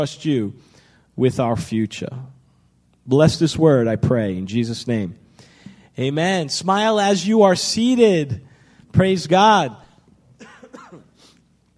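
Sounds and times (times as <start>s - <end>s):
speech: 0.0s - 2.4s, 3.1s - 5.2s, 6.0s - 9.8s
breathy exhale: 5.3s - 5.9s
preacher coughing away from handheld microphone during church service: 10.4s - 11.2s.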